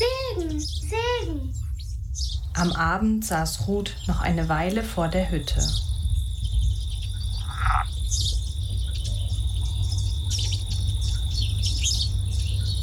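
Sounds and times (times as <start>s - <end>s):
low outdoor rumble: 0.0s - 12.8s
small birds chirping in the evening: 0.0s - 12.8s
steady high insect drone: 0.0s - 12.8s
speech: 2.6s - 5.9s.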